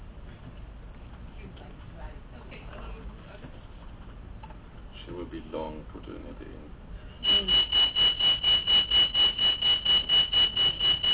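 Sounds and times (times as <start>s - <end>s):
speech: 5.3s - 8.0s
fire alarm blaring with shrill high-pitched pulsing tone: 7.2s - 11.1s.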